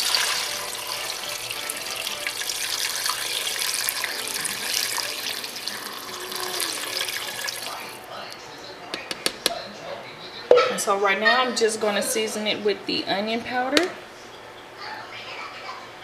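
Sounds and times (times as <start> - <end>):
water pouring into a cooking pot: 0.0 - 8.1
speech: 10.8 - 14.0.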